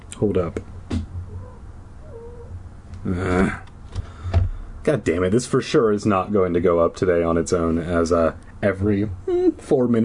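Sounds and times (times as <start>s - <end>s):
quiet hum: 0.0s - 10.0s
speech: 0.2s - 0.8s, 3.0s - 3.6s, 4.8s - 10.0s
female cat in heat yowling: 1.2s - 2.6s
faint low cat mewling: 1.2s - 3.7s.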